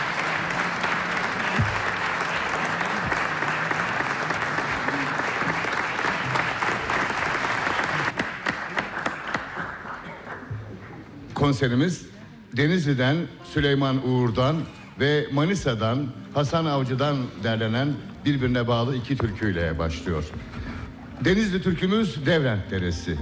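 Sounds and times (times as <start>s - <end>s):
audience applause at a folk music choir concert: 0.0s - 10.5s
speech: 11.4s - 20.6s, 21.2s - 23.2s.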